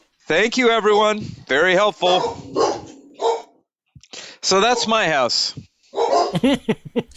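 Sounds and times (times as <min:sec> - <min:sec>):
speech: 0:00.3 - 0:02.7, 0:04.5 - 0:05.6, 0:06.3 - 0:07.1
dog giving a drawn-out yelp: 0:02.0 - 0:03.6, 0:04.6 - 0:05.0, 0:06.0 - 0:06.4
dogs barking at home: 0:02.0 - 0:03.6, 0:04.5 - 0:05.2, 0:05.9 - 0:06.5
laughter: 0:06.2 - 0:07.1.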